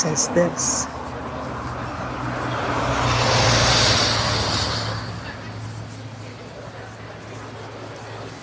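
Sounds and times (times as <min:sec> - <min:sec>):
speech: 0:00.0 - 0:01.0
steady low rumble of street noise: 0:00.0 - 0:08.4
car swishing past on rain-soaked concrete on a busy street: 0:02.9 - 0:05.4.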